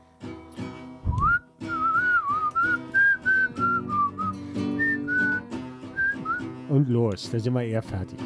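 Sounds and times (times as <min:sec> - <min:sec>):
person whistling a lilting folk-song melody: 0:01.0 - 0:06.5
speech: 0:06.8 - 0:08.2.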